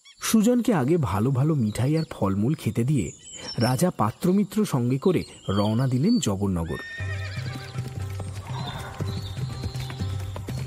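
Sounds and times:
speech: 0.3 - 7.1
horse whinny: 6.6 - 10.3
horse hooves clip-clopping as a horse is ridden: 6.8 - 10.6.

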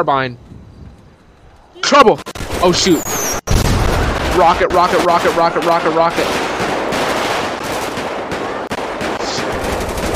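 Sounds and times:
speech: 0.0 - 0.5, 1.8 - 3.5, 4.4 - 6.5
rapid carbine gunfire in a police roleplay video game: 3.5 - 10.1.

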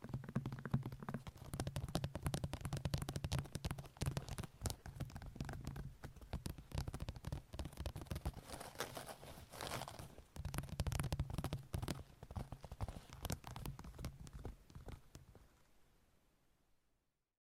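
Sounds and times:
long nails scratching and tapping: 0.0 - 15.5.

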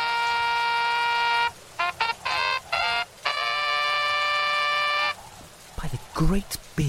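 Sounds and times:
trumpet played badly: 0.0 - 5.2
speech: 6.2 - 6.8.

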